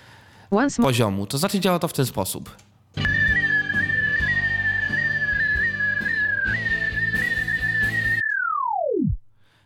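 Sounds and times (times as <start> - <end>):
speech: 0.5 - 2.7
music: 3.0 - 8.2
whistle-like metering plugin tone: 3.1 - 9.2.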